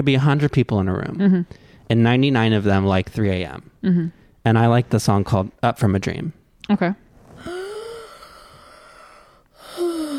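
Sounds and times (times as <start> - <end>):
speech: 0.0 - 7.6
breathy gasps of people breathing at the start of a song: 7.4 - 10.1.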